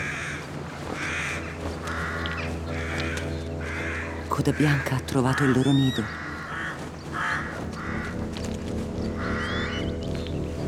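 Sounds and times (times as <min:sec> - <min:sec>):
constant low rumble of wind or surf: 0:00.0 - 0:04.3, 0:06.0 - 0:10.6
several crows cawing: 0:00.0 - 0:10.2
speech: 0:04.4 - 0:06.2.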